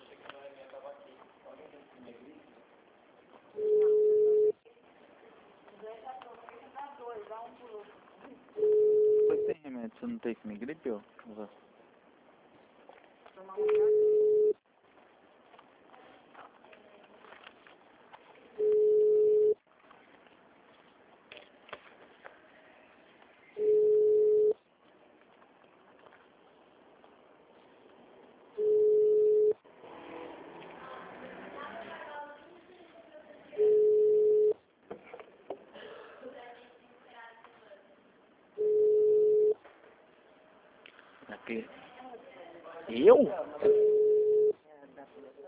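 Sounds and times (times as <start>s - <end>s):
ringback tone of an outgoing telephone call: 3.6s - 4.6s, 8.6s - 9.5s, 13.6s - 14.6s, 18.6s - 19.6s, 23.6s - 24.6s, 28.6s - 29.6s, 33.6s - 34.6s, 38.6s - 39.6s, 43.7s - 44.5s
speech: 10.0s - 11.8s.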